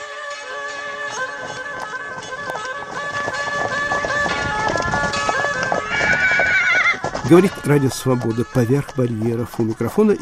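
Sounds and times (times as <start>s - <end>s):
horse hooves clip-clopping: 0.1s - 10.2s
horse neighing and whinnying: 4.2s - 7.7s
speech: 7.3s - 10.2s.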